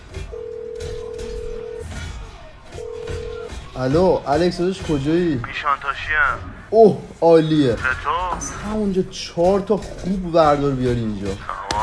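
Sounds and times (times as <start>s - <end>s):
steady electronic telephone tone while placing a call: 0.2s - 1.9s, 2.8s - 3.5s
speech: 3.8s - 11.8s.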